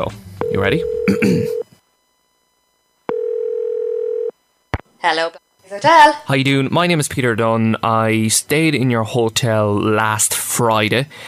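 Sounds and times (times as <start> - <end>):
speech: 0.0 - 1.6, 5.0 - 11.2
telephone tone as a number is dialed to a hotel: 0.4 - 2.3, 3.1 - 4.4.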